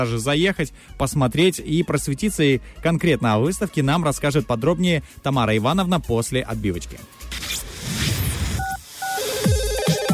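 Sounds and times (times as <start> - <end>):
speech: 0.0 - 7.4
two-note telephone dialing beeps: 8.6 - 10.1.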